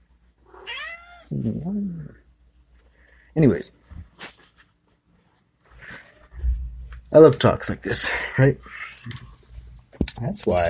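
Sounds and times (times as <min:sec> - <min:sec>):
cat meowing plaintively: 0:00.5 - 0:01.3
speech: 0:01.3 - 0:02.2, 0:03.4 - 0:04.1, 0:07.1 - 0:09.3, 0:10.2 - 0:10.6.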